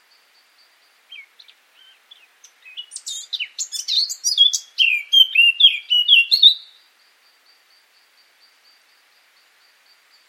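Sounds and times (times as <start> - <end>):
Eurasian blackcap singing: 1.1 - 6.8.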